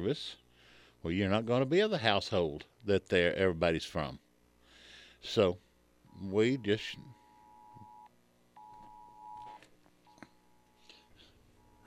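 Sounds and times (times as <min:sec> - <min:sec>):
speech: 0:00.0 - 0:00.4, 0:01.0 - 0:04.2, 0:05.2 - 0:05.6, 0:06.2 - 0:07.2
phone weather alert alarm long electronic tones: 0:06.4 - 0:09.6.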